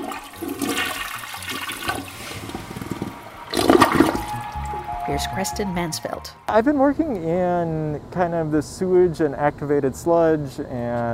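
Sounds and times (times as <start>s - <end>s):
water swirling and gurgling as the toilet bowl drains and refills: 0.0s - 4.5s
toilet flushing in a student dorm: 0.0s - 4.7s
speech: 5.1s - 11.1s.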